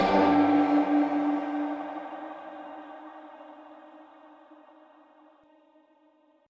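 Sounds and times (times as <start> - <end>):
airy impact: 0.0 - 3.6.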